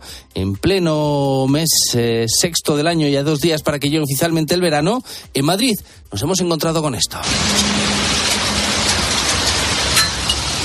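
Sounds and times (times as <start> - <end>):
speech: 0.4 - 8.2
heavy rain pouring during an afternoon storm in Madrid: 7.2 - 10.6.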